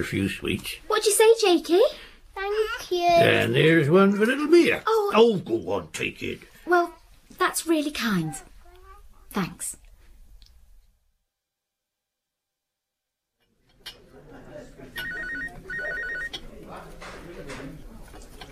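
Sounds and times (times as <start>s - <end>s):
speech: 0.0s - 2.1s, 2.9s - 6.8s, 7.6s - 8.5s, 9.3s - 9.8s
telephone ringing in short trilling bursts: 14.9s - 16.4s.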